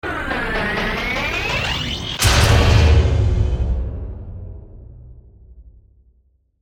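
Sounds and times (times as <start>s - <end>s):
sci-fi transforming robot charge up: 0.0s - 2.6s
sci-fi hit: 0.1s - 5.9s.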